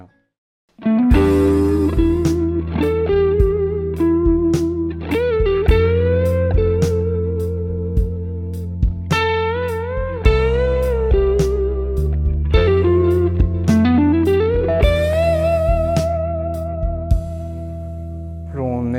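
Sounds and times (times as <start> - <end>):
dry electric guitar solo in A major: 0.8 - 18.4
low backing: 1.0 - 18.9
drum hits: 1.1 - 2.6, 5.3 - 7.0, 8.8 - 11.6, 12.3 - 14.0, 14.6 - 16.2, 16.8 - 17.6.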